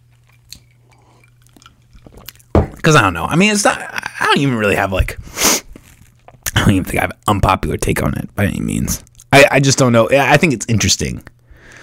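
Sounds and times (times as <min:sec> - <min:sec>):
low electrical hum: 0:00.0 - 0:11.8
person sipping whiskey: 0:00.4 - 0:02.5
speech: 0:02.8 - 0:05.4, 0:06.7 - 0:11.3.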